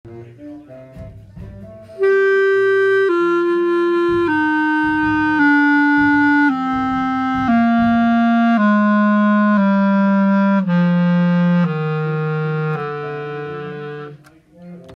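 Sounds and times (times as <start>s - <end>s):
clarinet playing in its lower register: 0.1s - 14.9s.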